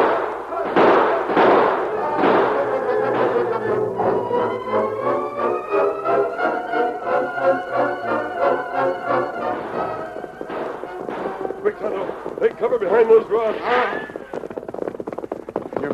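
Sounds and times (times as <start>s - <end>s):
gunshots volley: 0.0s - 4.8s, 9.6s - 14.2s
pulsing rhythmic orchestral music: 1.8s - 13.2s.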